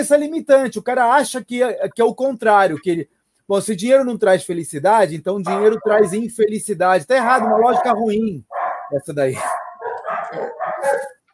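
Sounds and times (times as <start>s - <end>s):
speech: 0.0s - 9.6s
several dogs barking on the other side of a house: 5.5s - 6.2s, 7.2s - 11.2s.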